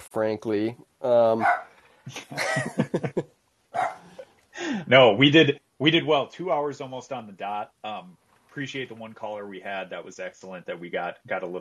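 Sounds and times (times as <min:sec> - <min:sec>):
speech: 0:00.2 - 0:03.3, 0:04.8 - 0:11.5
dog barking excitedly: 0:01.4 - 0:01.7, 0:03.8 - 0:04.2
laughter: 0:02.1 - 0:03.2, 0:04.6 - 0:05.3.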